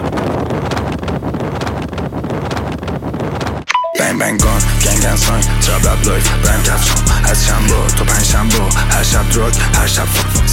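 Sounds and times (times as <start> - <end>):
heavy wind buffeting a microphone while riding a motorcycle: 0.0 - 3.7
speech: 4.2 - 10.5.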